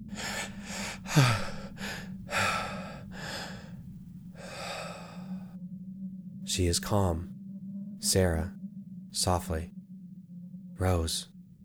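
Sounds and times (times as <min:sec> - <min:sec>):
heavy breathing slowing to a deep breath: 0:00.0 - 0:05.6
steady low hum: 0:00.0 - 0:11.6
speech: 0:01.2 - 0:01.4, 0:06.6 - 0:07.4, 0:08.1 - 0:08.6, 0:09.2 - 0:09.8, 0:10.8 - 0:11.3.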